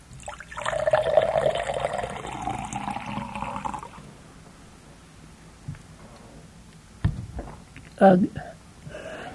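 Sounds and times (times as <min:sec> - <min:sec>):
water pouring into a glass: 0:00.0 - 0:04.0
people talking: 0:08.0 - 0:08.5.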